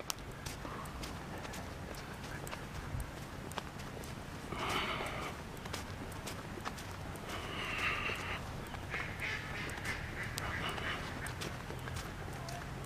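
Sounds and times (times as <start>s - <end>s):
outdoor noise in a park with streams: 0.0s - 12.8s
ducks quacking: 7.3s - 12.6s.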